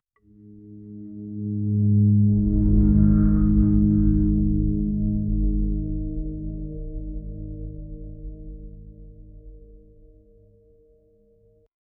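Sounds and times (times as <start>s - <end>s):
low mournful flute: 0.3s - 9.4s.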